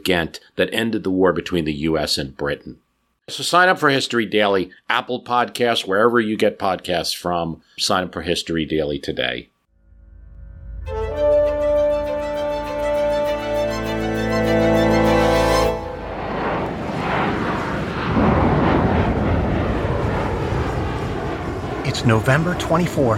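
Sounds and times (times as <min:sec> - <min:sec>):
speech: 0:00.0 - 0:09.5, 0:22.0 - 0:23.1
droning aircraft engine hum: 0:10.9 - 0:23.1
passenger plane flying over Washington state during a storm: 0:11.5 - 0:23.1
rumbling wind noise during a storm: 0:15.9 - 0:23.1.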